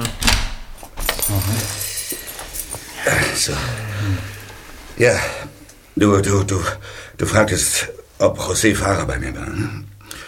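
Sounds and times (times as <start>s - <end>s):
keys jangling as an office door is locked: 0.0s - 3.4s
speech: 3.1s - 4.4s, 5.0s - 5.4s, 6.0s - 9.9s.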